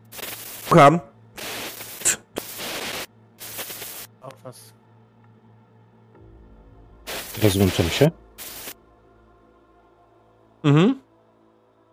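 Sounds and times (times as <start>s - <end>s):
radio static crackling as a phone call is jammed: 0.0s - 4.3s, 7.1s - 8.8s
low steady electrical hum: 0.0s - 10.6s
speech: 0.7s - 1.1s, 7.4s - 8.2s, 10.6s - 11.0s.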